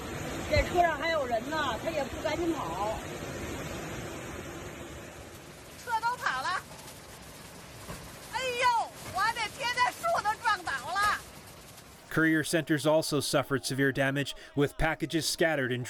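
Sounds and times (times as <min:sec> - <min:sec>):
brownish storm floodwaters gushing down city streets: 0:00.0 - 0:15.8
speech: 0:00.7 - 0:03.6, 0:12.2 - 0:15.8
several voices calling out and talking excitedly: 0:05.8 - 0:06.8, 0:08.3 - 0:11.2, 0:12.1 - 0:15.8.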